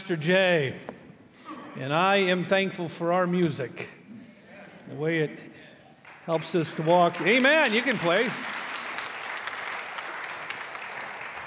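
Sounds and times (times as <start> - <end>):
speech: 0.1 - 0.9, 1.8 - 4.0, 4.9 - 5.6, 6.3 - 8.5
large group applauding in a church: 6.0 - 11.4.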